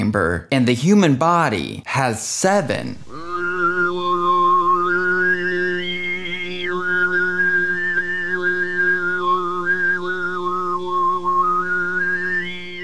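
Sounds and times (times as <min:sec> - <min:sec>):
speech: 0:00.1 - 0:03.3
Mongolian throat singing with whistle-like overtone melody: 0:02.6 - 0:12.8.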